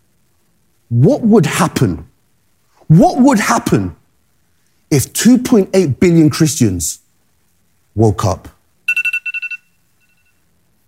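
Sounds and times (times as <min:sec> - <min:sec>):
speech: 0:00.9 - 0:02.1, 0:02.9 - 0:04.0, 0:04.9 - 0:07.0, 0:08.0 - 0:08.6
electronic alarm ringtone beeps: 0:08.9 - 0:10.4.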